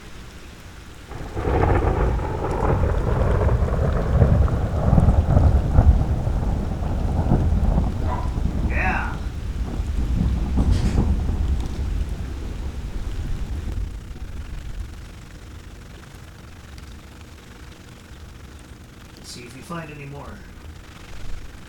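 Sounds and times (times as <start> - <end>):
steady rain in a passing thunderstorm: 0.0 - 21.6
deep rolling thunder in a passing thunderstorm: 1.0 - 19.1.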